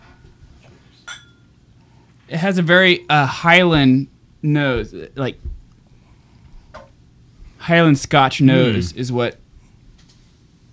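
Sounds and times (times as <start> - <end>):
glasses clinking in a toast: 1.0 - 1.5
speech: 2.3 - 5.6, 7.7 - 9.4.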